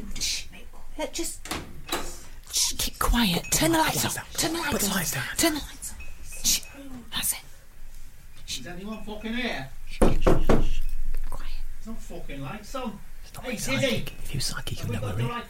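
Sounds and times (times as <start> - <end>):
speech: 1.0 - 1.6, 3.1 - 5.8, 8.6 - 10.7, 11.9 - 15.4
people whispering: 1.9 - 7.6, 9.8 - 11.7, 13.2 - 15.4
sharp hollow knocks on a door: 10.0 - 10.7.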